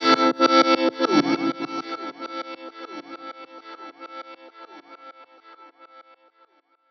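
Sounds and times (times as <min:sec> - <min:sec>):
electric guitar effects in A minor: 0:00.0 - 0:05.6.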